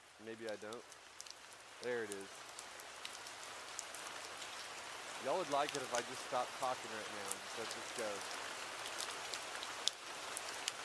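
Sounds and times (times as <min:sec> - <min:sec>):
soft steady rain: 0:00.0 - 0:10.8
speech: 0:00.2 - 0:01.0, 0:01.8 - 0:02.5, 0:05.2 - 0:08.4.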